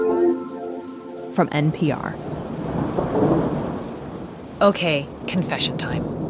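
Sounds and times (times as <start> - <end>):
steady rain: 0.0 - 6.2
speech: 1.4 - 2.4, 4.6 - 6.2
deep rumble of thunder: 2.0 - 6.2.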